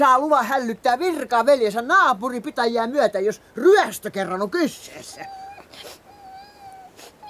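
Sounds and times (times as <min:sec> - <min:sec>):
speech: 0:00.0 - 0:06.0
cat crying with a wailing meow: 0:05.2 - 0:07.2.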